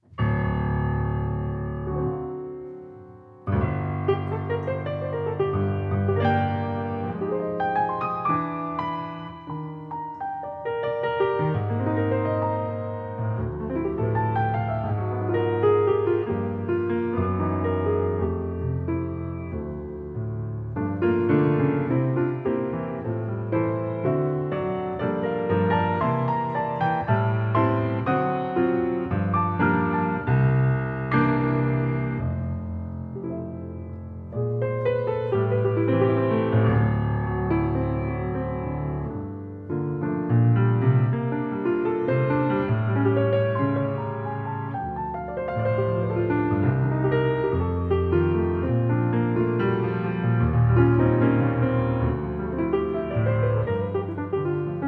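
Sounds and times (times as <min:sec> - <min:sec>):
short musical improvisation: 0:00.0 - 0:54.8.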